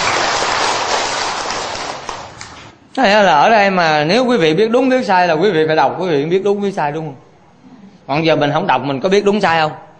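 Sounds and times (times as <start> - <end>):
audience applause for a woman called up to the MC podium: 0.0 - 2.7
speech: 3.0 - 7.2, 8.1 - 9.8.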